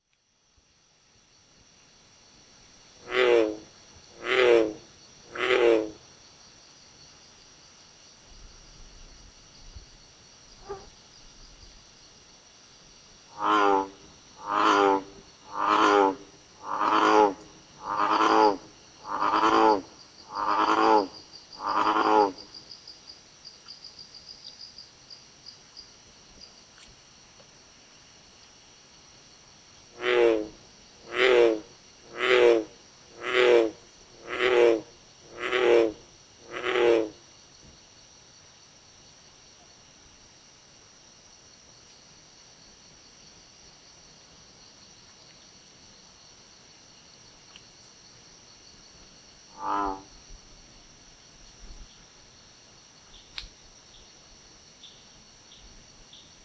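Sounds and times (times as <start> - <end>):
Lithobates catesbeianus frog low-pitched bellowing call: 3.0 - 6.0, 10.6 - 11.0, 13.3 - 22.5, 29.9 - 37.2, 49.5 - 50.2.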